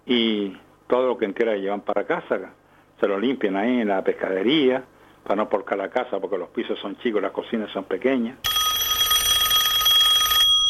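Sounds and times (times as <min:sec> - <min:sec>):
speech: 0:00.1 - 0:08.6
telephone ringing with an electronic trill for an incoming call: 0:08.4 - 0:10.6.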